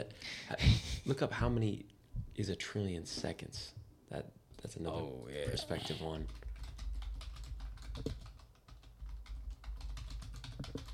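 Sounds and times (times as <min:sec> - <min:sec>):
speech: 0:00.0 - 0:06.5, 0:08.0 - 0:08.2
typing on a computer keyboard: 0:06.1 - 0:10.9.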